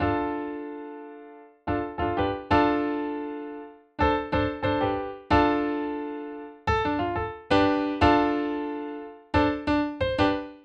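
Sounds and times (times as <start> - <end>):
piano vamp: 0.0 - 10.6.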